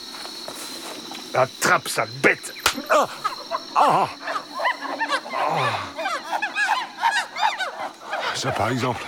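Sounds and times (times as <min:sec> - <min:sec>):
speech: 0:01.3 - 0:04.2, 0:05.5 - 0:05.9, 0:08.4 - 0:09.0
chorus of howler monkeys howling and hooting: 0:02.8 - 0:09.0.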